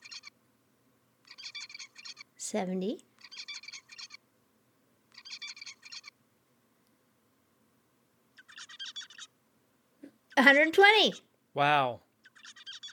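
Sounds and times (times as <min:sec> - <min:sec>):
young songbird singing buzzy bursts of rapid notes: 0:00.0 - 0:00.3, 0:01.2 - 0:02.3, 0:03.2 - 0:04.2, 0:05.1 - 0:06.1, 0:08.4 - 0:09.3, 0:12.2 - 0:12.9
faint hiss: 0:00.0 - 0:12.9
speech: 0:02.5 - 0:03.1, 0:10.4 - 0:12.0.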